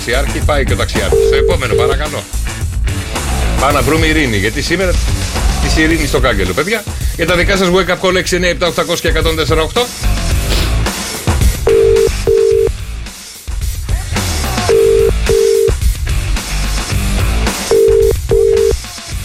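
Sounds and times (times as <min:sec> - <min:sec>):
speech: 0:00.0 - 0:02.6, 0:03.6 - 0:10.2
loud music: 0:00.0 - 0:19.2
telephone ringing tone of an unanswered call: 0:01.1 - 0:02.0, 0:11.7 - 0:12.7, 0:14.7 - 0:15.8, 0:17.7 - 0:18.8.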